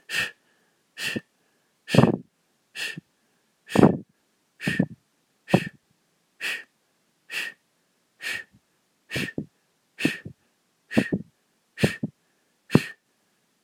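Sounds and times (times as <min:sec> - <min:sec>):
forceful exhales from a breathing exercise pumping the stomach: 0:01.0 - 0:01.2, 0:01.9 - 0:02.2, 0:02.8 - 0:03.0, 0:03.7 - 0:04.0, 0:04.6 - 0:05.8, 0:08.2 - 0:12.1, 0:12.7 - 0:13.0.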